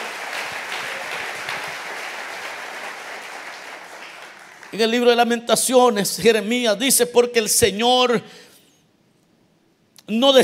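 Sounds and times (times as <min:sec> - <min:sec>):
audience applauding: 0:00.0 - 0:05.2
speech: 0:04.7 - 0:08.5, 0:10.1 - 0:10.4.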